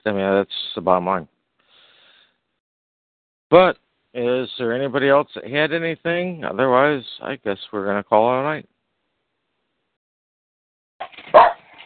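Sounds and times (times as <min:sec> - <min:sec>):
speech: 0:00.0 - 0:01.3, 0:03.5 - 0:08.7
dog barking: 0:11.3 - 0:11.8.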